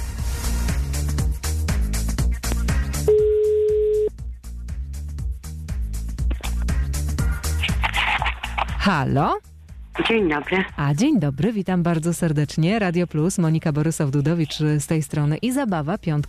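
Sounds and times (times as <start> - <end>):
music: 0.0 - 16.2
telephone ringing tone while placing a call: 3.1 - 4.1
speech: 8.9 - 9.4, 10.0 - 16.2.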